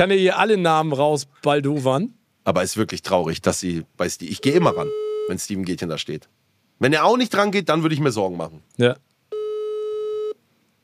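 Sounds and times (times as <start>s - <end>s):
speech: 0.0s - 9.1s
phone line ringback tone during an outgoing call: 4.4s - 5.3s, 9.3s - 10.4s.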